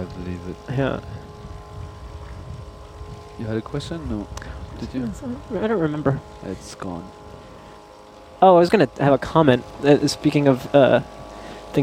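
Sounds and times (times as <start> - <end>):
faint tonal hum: 0.0 - 11.8
former military boat engine droning: 0.0 - 11.8
speech: 0.4 - 1.2, 3.4 - 7.2, 8.4 - 11.8
wind-like noise: 0.6 - 5.6.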